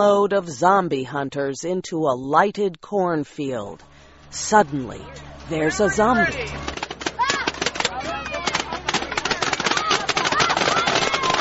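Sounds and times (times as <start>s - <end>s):
speech: 0.0s - 6.7s
paintball guns firing in a lighted cornfield: 5.7s - 11.3s.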